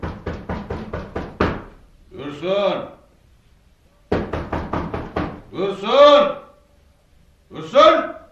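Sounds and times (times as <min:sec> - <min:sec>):
knocking on a door: 0:00.0 - 0:01.8, 0:04.1 - 0:05.5
speech: 0:02.3 - 0:03.0, 0:05.5 - 0:06.4.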